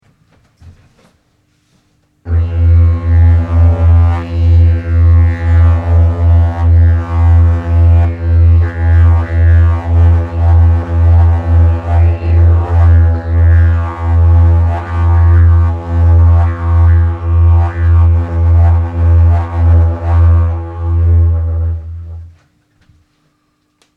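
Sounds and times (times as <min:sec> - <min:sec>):
didgeridoo recorded binaurally: 0:02.3 - 0:22.4.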